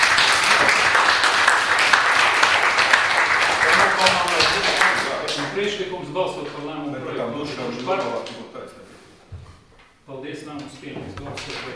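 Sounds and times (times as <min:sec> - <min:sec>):
audience applauding at a meeting: 0:00.0 - 0:05.7
speech: 0:05.6 - 0:08.8, 0:10.1 - 0:11.7.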